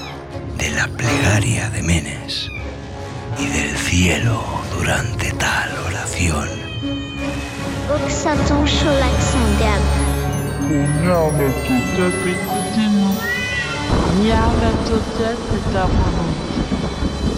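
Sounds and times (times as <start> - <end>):
speech: 0.8 - 2.8, 3.4 - 10.0, 10.7 - 12.9, 14.2 - 16.8
many cats meowing and yowling: 13.2 - 13.9.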